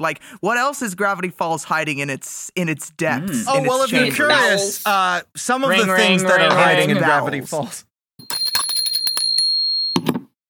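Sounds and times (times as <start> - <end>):
speech: 0.0 - 8.3
bicycle bell ringing: 8.2 - 10.1.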